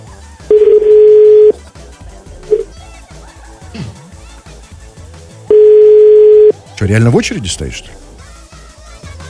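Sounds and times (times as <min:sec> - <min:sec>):
long steady telephone ringback tone during a call: 0:00.5 - 0:01.6, 0:02.5 - 0:02.7, 0:05.5 - 0:06.5
speech: 0:06.8 - 0:08.1.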